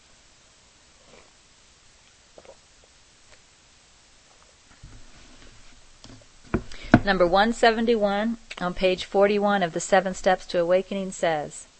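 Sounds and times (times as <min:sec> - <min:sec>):
person sipping tea with soft slurps and small clicks: 0:01.0 - 0:01.4, 0:02.3 - 0:02.7
swallowing noises: 0:02.3 - 0:02.7
speech: 0:07.0 - 0:11.7.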